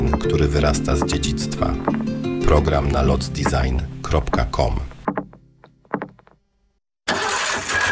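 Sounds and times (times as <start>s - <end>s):
speech: 0.2s - 4.9s
car engine cranking and starting: 7.1s - 7.9s.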